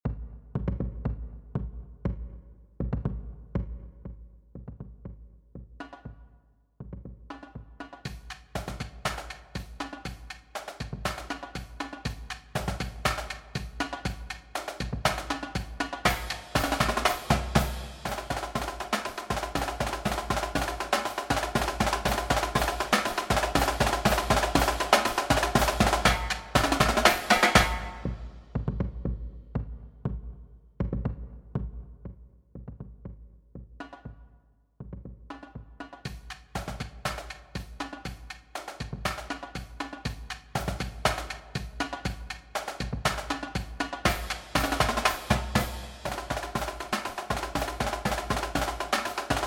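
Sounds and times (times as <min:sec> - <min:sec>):
hard middle school marching drum cadence: 0:00.0 - 0:49.4.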